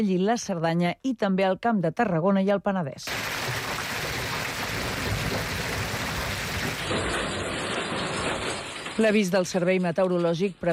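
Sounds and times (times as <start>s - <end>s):
speech: 0.0s - 3.5s, 9.0s - 10.7s
heavy rain pouring down in a thunderstorm: 3.1s - 9.2s.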